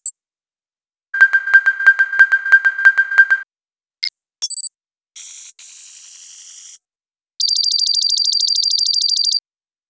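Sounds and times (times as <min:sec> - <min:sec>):
computer beeps: 0:01.2 - 0:03.5, 0:07.4 - 0:09.4.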